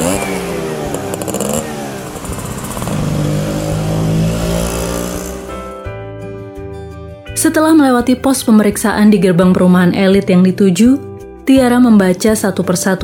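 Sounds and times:
delivery-service motorcycle engine started with its key and revving: 0.0 - 5.9
speech: 7.4 - 13.0.

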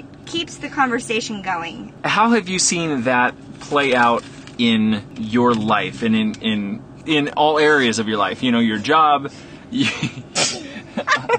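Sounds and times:
speech: 0.3 - 10.3
breathy sounds: 9.3 - 9.7
laughter: 9.8 - 11.3
person sneezing: 10.3 - 10.9.

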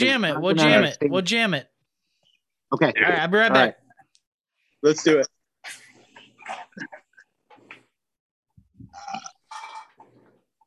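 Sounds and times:
speech: 0.0 - 1.7, 2.7 - 3.8, 4.8 - 5.8
loud raspy burps with gurgling grunt: 8.9 - 10.0.

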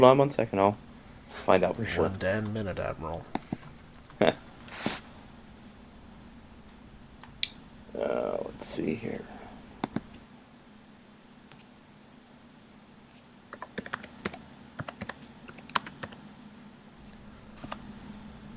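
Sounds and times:
speech: 0.0 - 3.4, 4.2 - 4.5, 8.0 - 9.4
typing on a computer keyboard: 1.9 - 4.8, 13.5 - 16.2.

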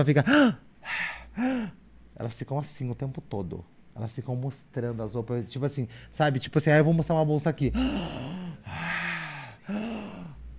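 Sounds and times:
speech: 0.0 - 9.0, 9.7 - 9.9
voice imitating heavy breathy ASMR-style breathing: 0.3 - 1.8, 7.7 - 10.5.

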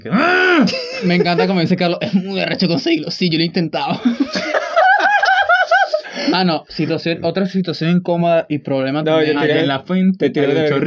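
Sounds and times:
speech: 0.0 - 4.7, 6.3 - 10.8
voice imitating an aroused moan: 0.1 - 0.8
laughter: 0.5 - 3.1, 3.8 - 7.3.

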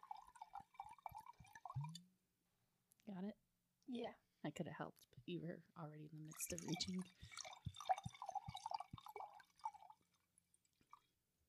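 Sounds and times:
drink being poured into a glass: 0.0 - 2.0, 6.3 - 11.2
faint drips: 0.0 - 2.0, 6.2 - 11.1
speech: 3.1 - 7.5.

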